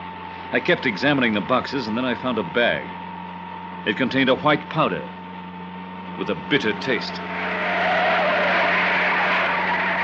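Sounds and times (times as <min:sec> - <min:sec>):
low truck engine hum: 0:00.0 - 0:10.0
speech: 0:00.5 - 0:03.0, 0:03.8 - 0:05.2, 0:06.2 - 0:07.4
truck tires skidding as the truck turns and pulls up: 0:06.1 - 0:10.0.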